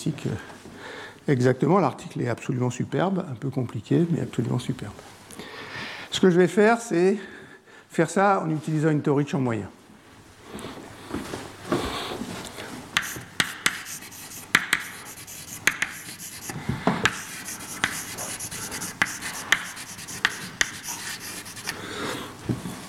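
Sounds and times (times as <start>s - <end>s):
speech: 0.0s - 0.5s, 1.3s - 5.5s, 6.1s - 9.8s
equation being written on a board during a lecture: 13.0s - 21.8s.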